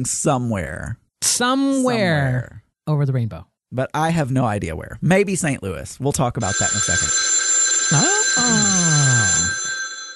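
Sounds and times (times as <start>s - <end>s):
speech: 0.0s - 7.3s, 7.9s - 9.0s
telephone ringing with electronic tones: 6.4s - 10.1s.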